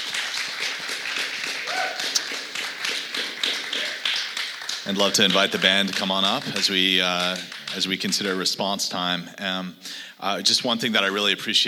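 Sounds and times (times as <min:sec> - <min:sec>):
crowd applauding steadily: 0:00.0 - 0:08.5
speech: 0:04.9 - 0:11.6.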